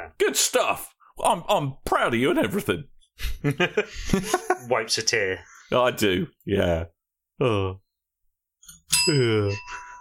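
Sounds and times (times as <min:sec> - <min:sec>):
speech: 0:00.2 - 0:07.8, 0:09.0 - 0:09.8
bright ringing celebration bell chiming: 0:08.7 - 0:10.0.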